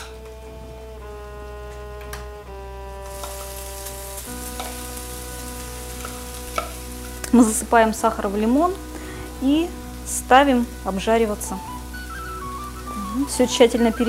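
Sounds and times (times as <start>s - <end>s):
constant low hum and tones: 0.0s - 14.0s
lemon puree sizzling in a preheated frying pan: 3.0s - 14.0s
speech: 7.3s - 11.7s, 13.2s - 14.0s.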